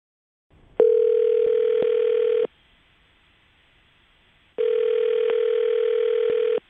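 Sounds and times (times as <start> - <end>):
phone ringback tones: 0.8 - 2.5, 4.6 - 6.6.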